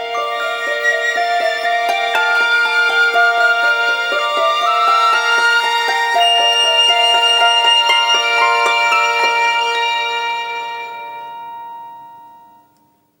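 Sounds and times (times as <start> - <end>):
Vertu Constellation T phone alarm tone: 0.1 - 12.7.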